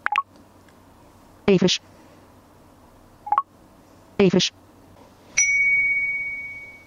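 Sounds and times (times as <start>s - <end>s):
speech: 1.5s - 2.0s, 4.2s - 4.6s
smartphone app chime on connecting to scale: 5.4s - 6.8s.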